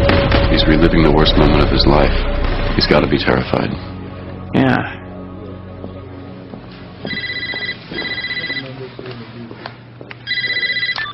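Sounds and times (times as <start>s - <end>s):
speech: 0.6s - 3.9s, 4.5s - 5.0s
electronic telephone ringing: 7.1s - 8.8s, 10.2s - 11.1s.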